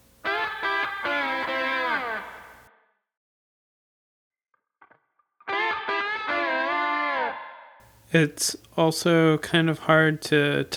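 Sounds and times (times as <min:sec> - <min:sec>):
clean slide guitar with short reverb: 0:00.0 - 0:02.7, 0:05.5 - 0:10.7
speech: 0:08.1 - 0:10.7.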